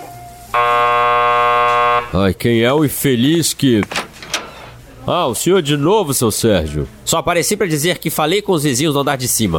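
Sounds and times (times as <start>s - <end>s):
electric doorbell buzzing: 0.6s - 2.2s
speech: 2.1s - 4.0s, 5.0s - 9.5s.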